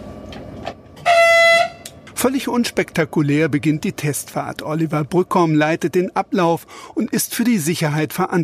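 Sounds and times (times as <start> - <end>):
short train whistle signal before departure of a remote-controlled test train at a station: 1.0 - 1.9
speech: 2.2 - 8.4.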